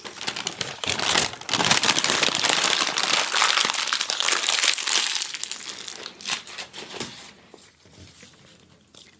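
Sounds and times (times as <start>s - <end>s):
paper packaging crinkling and crumpling: 0.0s - 7.3s.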